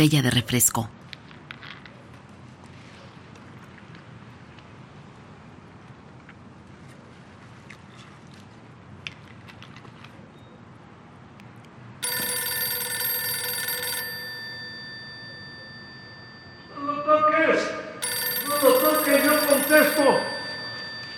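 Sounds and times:
speech: 0.0s - 1.0s
telephone ringing with electric trilling: 12.0s - 17.0s, 17.9s - 21.1s
person talking loudly and urgently: 18.4s - 20.4s.

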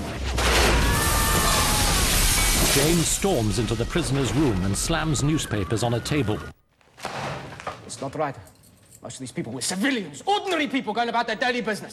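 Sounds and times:
car bomb exploding in a main street: 0.0s - 5.6s
speech: 2.8s - 6.6s, 8.0s - 11.9s.

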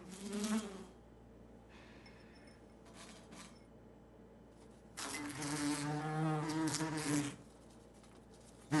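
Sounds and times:
wasp buzzing inside an upturned glass in a kitchen sink: 0.0s - 1.0s, 5.0s - 7.6s.

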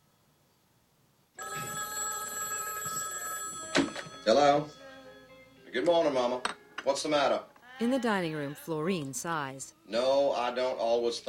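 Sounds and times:
telephone bell ringing in a hallway: 1.4s - 5.5s
speech: 4.3s - 4.8s, 5.7s - 11.2s.

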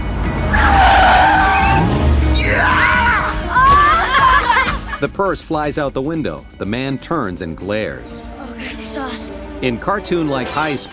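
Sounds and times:
car tires squealing and skidding as a car jerks to a sudden stop: 0.4s - 4.6s
laughter: 3.6s - 5.1s
speech: 5.0s - 10.9s.

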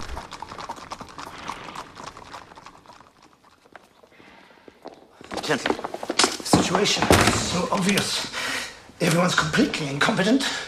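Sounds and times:
horses' hooves clip-clopping as riders enter a courtyard: 0.0s - 8.2s
speech: 5.5s - 5.9s, 6.7s - 8.4s, 9.0s - 10.6s.

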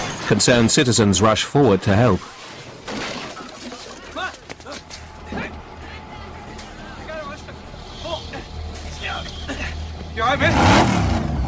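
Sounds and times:
speech: 0.3s - 2.4s
car engine noise: 5.6s - 11.4s
car crash screeching: 6.8s - 11.4s.

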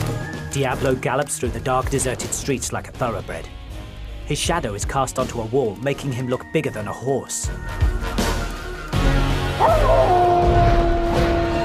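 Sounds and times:
speech: 0.5s - 3.6s, 4.3s - 8.2s
dog barking and rumbling: 9.6s - 10.3s
dog howling: 9.6s - 11.6s.

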